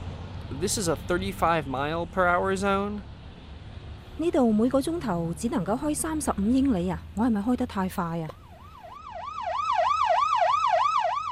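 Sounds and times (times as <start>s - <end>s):
speech: 0.5s - 3.1s, 4.2s - 8.4s
police car siren yelping: 8.3s - 11.3s.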